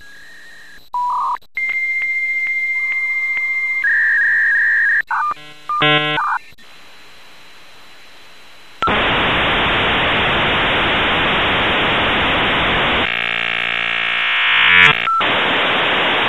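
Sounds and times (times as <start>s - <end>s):
Hayes V90 modem sounds: 1.1s - 6.6s, 8.8s - 16.1s.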